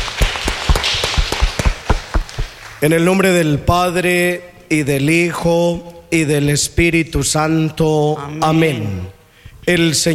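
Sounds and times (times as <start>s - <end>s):
group of people applauding indoors: 0.0s - 2.9s
speech: 2.8s - 10.1s.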